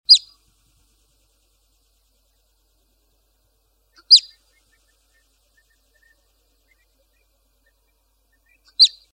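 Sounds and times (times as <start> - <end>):
marmot calling: 0.1 - 0.4, 3.9 - 9.1.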